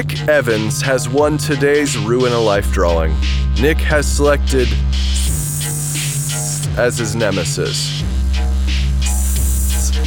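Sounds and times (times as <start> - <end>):
speech: 0.0 - 5.4, 6.8 - 8.1
steady fairly loud hiss: 4.6 - 6.9, 9.1 - 10.0
soft airy puffs: 4.7 - 6.8, 9.0 - 10.0.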